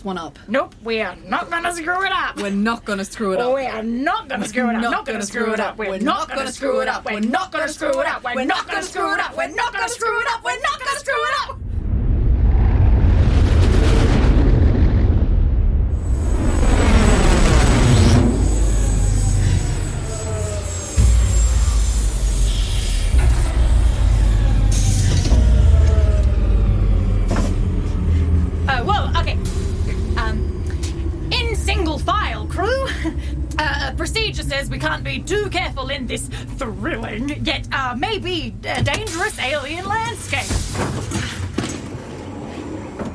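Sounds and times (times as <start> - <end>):
speech: 0.0 - 11.6, 34.6 - 41.1
sweeping descending whines of a landing spaceship: 11.2 - 40.1
spaceship engine roar while landing on a planet: 11.6 - 39.8.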